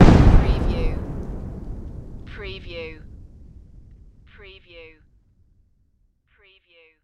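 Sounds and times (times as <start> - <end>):
dirt debris falling: 0.0 - 4.3
explosion: 0.0 - 4.6.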